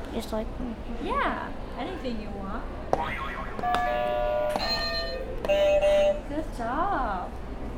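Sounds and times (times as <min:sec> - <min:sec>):
speech: 0:00.2 - 0:07.4
electronic buzzers being pressed giving sustained ringing tones: 0:03.2 - 0:06.3.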